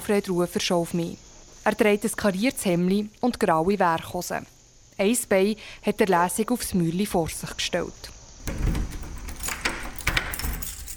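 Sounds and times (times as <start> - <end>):
speech: 0.1 - 8.8
keys jangling while unlocking the door to a school hall: 8.6 - 10.9.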